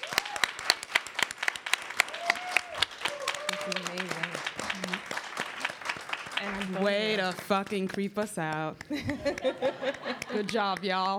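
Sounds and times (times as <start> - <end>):
crowd applauding: 0.0 - 8.0, 8.9 - 10.9
person cheering: 2.1 - 4.1
speech: 6.6 - 11.1
laughter: 8.9 - 10.7.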